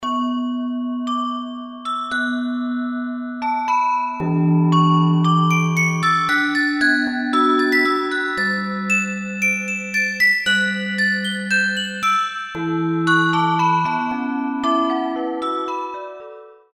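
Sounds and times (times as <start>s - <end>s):
bell foundry bells: 0.0s - 16.3s.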